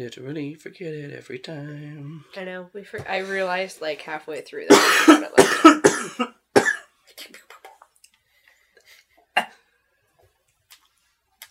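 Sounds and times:
speech: 0.0 - 6.4
harsh coughing fit: 4.7 - 6.9, 9.4 - 9.6.

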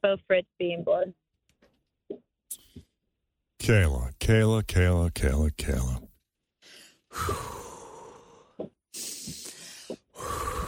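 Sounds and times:
speech: 0.0 - 1.2, 3.6 - 6.1, 7.2 - 7.6
person taking deep calming breaths to ease anxiety: 6.6 - 10.6.

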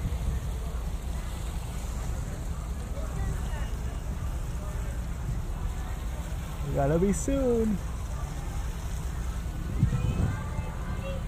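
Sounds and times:
boat engine rumbling on the water: 0.0 - 11.2
faint voices murmuring: 0.0 - 11.2
wash of churning water: 0.0 - 11.2
speech: 6.8 - 7.9.

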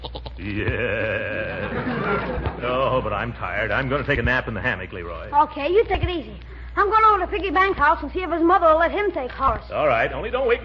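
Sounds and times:
goat bleating: 0.0 - 1.2
laughter: 0.4 - 3.4
speech: 0.4 - 10.6.

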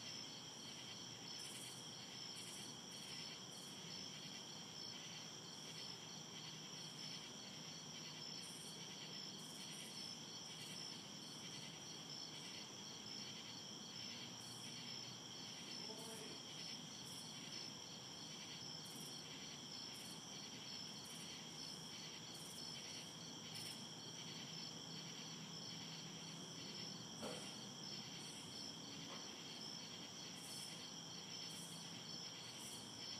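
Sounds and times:
crickets chirping: 0.0 - 33.1.

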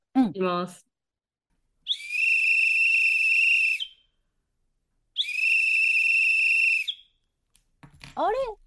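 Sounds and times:
speech: 0.4 - 0.9, 8.2 - 8.6
emergency whistle blasts: 1.8 - 4.2, 5.2 - 7.2.

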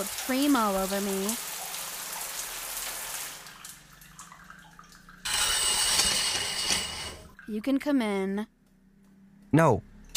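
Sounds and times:
speech: 0.0 - 1.5, 7.5 - 8.6, 9.5 - 9.9
shower water running: 0.0 - 7.5.

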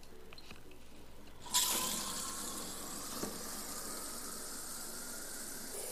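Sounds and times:
water running from a tap into a filter pitcher: 1.4 - 5.1.

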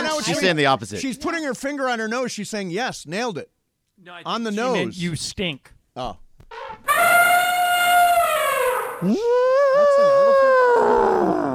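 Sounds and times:
speech: 0.3 - 7.1, 9.0 - 11.0
elephant trumpeting: 6.5 - 9.2.

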